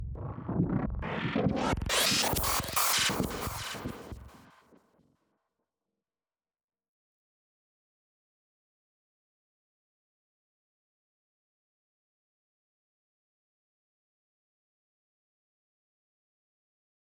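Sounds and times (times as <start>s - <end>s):
rising synth riser: 0.2s - 4.4s.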